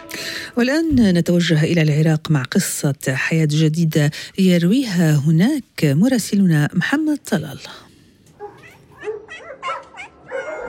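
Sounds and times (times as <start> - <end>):
speech: 0.6 - 7.9
dogs yipping and whining barks: 8.4 - 10.6.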